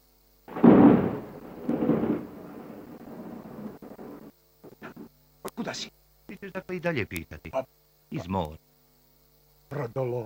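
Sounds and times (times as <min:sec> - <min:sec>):
thunder rumbling from a lightning strike: 0:00.5 - 0:04.3
speech: 0:05.6 - 0:08.6, 0:09.7 - 0:10.2.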